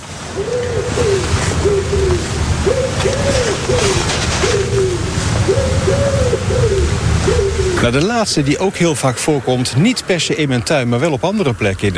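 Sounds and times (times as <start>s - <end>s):
Common Wood Pigeon cooing song: 0.0s - 9.5s
faint background hiss: 0.0s - 11.9s
speech: 7.8s - 11.9s.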